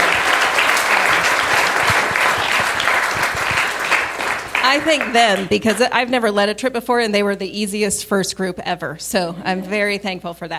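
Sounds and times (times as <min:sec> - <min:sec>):
audience clapping: 0:00.0 - 0:06.0
speech: 0:04.7 - 0:10.5.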